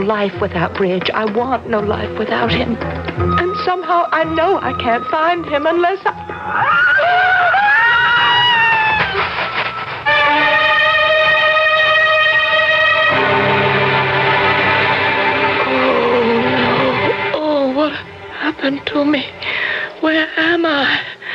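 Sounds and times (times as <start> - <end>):
speech: 0.0 - 7.5, 18.6 - 19.4, 20.0 - 21.1
sustained droning tones: 0.0 - 21.3
ridden horse whinnying: 2.2 - 9.8.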